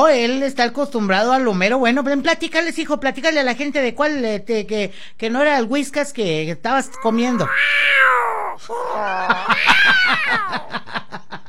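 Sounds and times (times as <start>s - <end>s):
speech: 0.1s - 11.4s
cat yowling and meowing: 6.9s - 10.7s
laughter: 8.9s - 11.4s.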